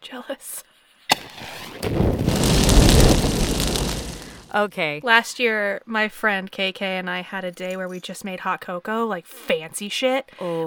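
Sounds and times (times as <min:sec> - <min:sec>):
speech: 0:00.0 - 0:00.7, 0:04.5 - 0:10.6
sharp pops of a bonfire: 0:01.1 - 0:04.5
bonfire burning: 0:01.2 - 0:04.6
dense crackling of a bonfire: 0:01.2 - 0:04.6
roar of rushing bonfire flames: 0:01.4 - 0:04.5.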